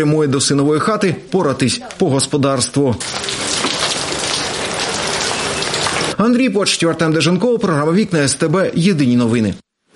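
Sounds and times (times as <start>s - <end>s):
speech: 0.0s - 3.6s, 6.2s - 9.7s
heavy May rain: 3.0s - 6.2s.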